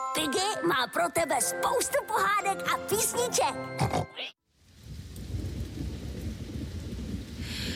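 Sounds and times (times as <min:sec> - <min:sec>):
speech: 0:00.2 - 0:04.4
rain falling outside: 0:04.5 - 0:07.7
low rolling thunder: 0:04.7 - 0:07.7.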